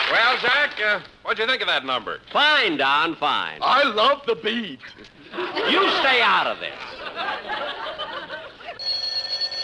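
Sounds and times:
speech: 0.1 - 7.9
laughter: 5.0 - 8.8
telephone ringing with trilling bell tone: 8.8 - 9.5.

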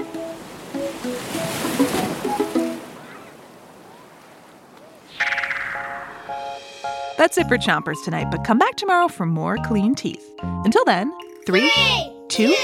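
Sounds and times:
ocean waves crashing: 0.0 - 8.1
squawking bird-like calls over the water: 5.0 - 6.3
speech: 7.2 - 12.6.

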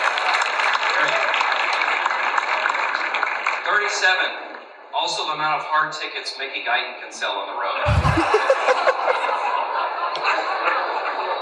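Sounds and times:
audience applause at an awards show: 0.0 - 3.6, 7.9 - 9.3
speech: 3.9 - 9.6
laughter: 7.9 - 11.4.

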